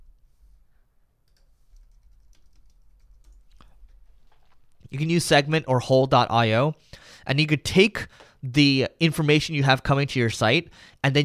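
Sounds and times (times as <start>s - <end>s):
low hum: 0.0s - 9.0s
typing on a computer keyboard: 1.2s - 4.7s
speech: 4.9s - 11.2s.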